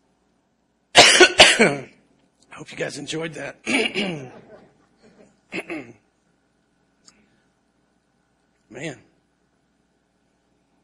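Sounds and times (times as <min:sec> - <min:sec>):
man coughing with something stuck in his throat: 0:01.0 - 0:01.9, 0:03.6 - 0:04.4, 0:05.5 - 0:06.0
speech: 0:01.6 - 0:01.9, 0:02.6 - 0:04.5, 0:05.5 - 0:06.0, 0:08.7 - 0:09.1.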